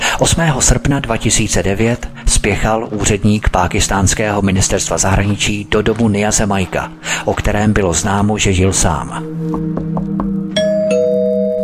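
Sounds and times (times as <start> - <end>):
speech: 0.2 - 10.2
bright doorbell chime tones: 10.5 - 11.6
house doorbell ringing: 10.5 - 11.6.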